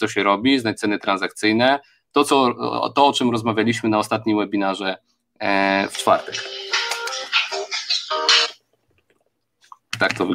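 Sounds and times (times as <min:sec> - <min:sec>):
speech: 0:00.0 - 0:06.8, 0:10.0 - 0:10.3
mobile phone ringing with a bright melodic ringtone: 0:06.0 - 0:08.6.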